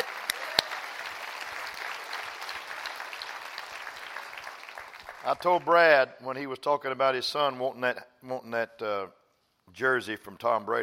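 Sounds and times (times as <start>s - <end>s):
congregation clapping hands in applause: 0.0s - 5.8s
speech: 5.2s - 10.8s.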